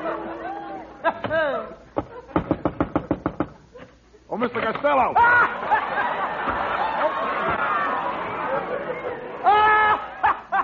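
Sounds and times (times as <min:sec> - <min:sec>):
laughter: 0:00.0 - 0:02.6, 0:05.1 - 0:10.6
heavy pounding on a door: 0:02.4 - 0:03.6
speech: 0:04.4 - 0:05.6.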